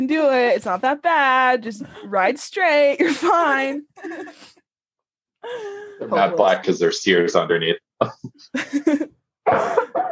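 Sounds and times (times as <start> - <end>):
speech: 0.0 - 4.6, 5.4 - 10.1
person coughing: 9.5 - 10.1.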